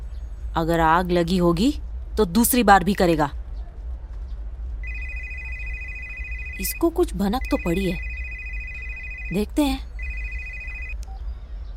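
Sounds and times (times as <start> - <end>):
speech: 0.6 - 3.4, 6.6 - 8.1, 9.3 - 9.9
telephone ringing in long electronic bursts: 4.8 - 11.0.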